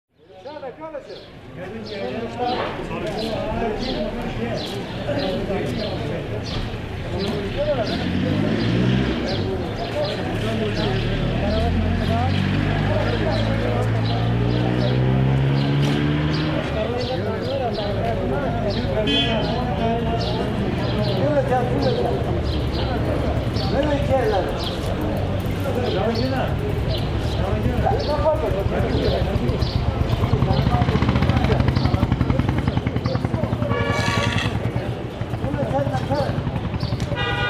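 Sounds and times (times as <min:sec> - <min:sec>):
street noise in Leh: 0:00.1 - 0:37.4.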